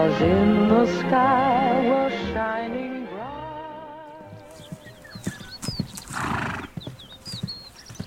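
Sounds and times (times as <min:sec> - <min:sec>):
speech: 0:00.1 - 0:02.3
hooves clip-clopping as horses are ridden through the countryside: 0:04.1 - 0:08.0
horse whinnying: 0:04.7 - 0:08.0.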